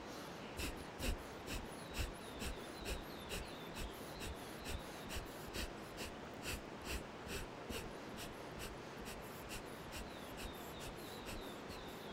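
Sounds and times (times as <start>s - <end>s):
forceful nasal breathing during an alternate-nostril breathing exercise: 0.0s - 12.1s.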